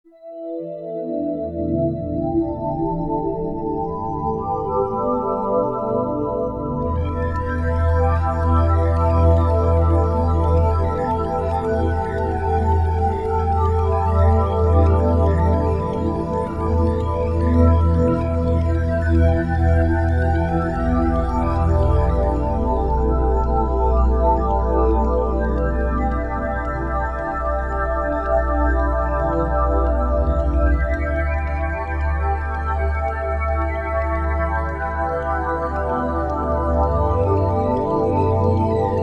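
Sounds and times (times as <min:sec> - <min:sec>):
ambient music: 0:00.2 - 0:39.0.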